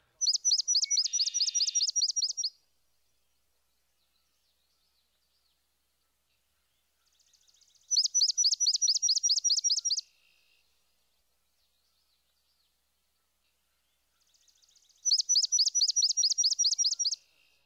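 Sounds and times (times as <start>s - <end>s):
swamp sparrow singing: 0.1s - 2.5s, 7.9s - 10.0s, 15.0s - 17.2s.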